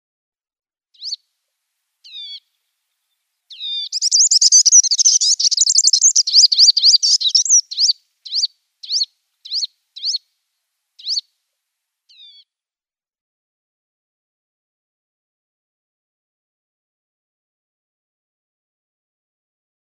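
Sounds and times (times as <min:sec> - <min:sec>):
Pygmy Sunbird calls: 0:01.0 - 0:01.2, 0:02.0 - 0:10.2, 0:11.0 - 0:11.3, 0:12.1 - 0:12.5.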